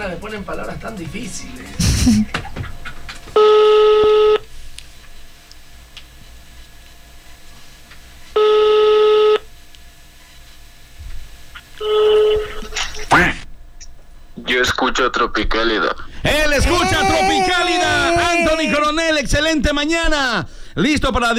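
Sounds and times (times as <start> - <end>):
speech: 0.0 - 2.6, 14.8 - 21.3
laughter: 0.0 - 5.4, 11.6 - 21.3
telephone ringback tones for an on-air call to a radio program: 0.0 - 19.2.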